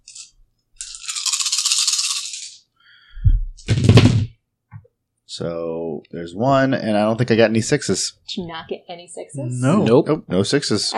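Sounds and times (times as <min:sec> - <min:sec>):
dice rattling in a cup: 0:00.0 - 0:02.6
speech: 0:05.4 - 0:10.9.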